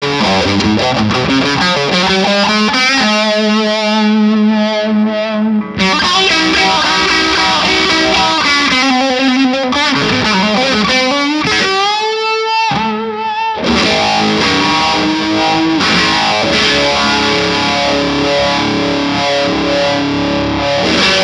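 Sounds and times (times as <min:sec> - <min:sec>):
phaser pedal on a medium dirty vintage amp: 0:00.0 - 0:21.2.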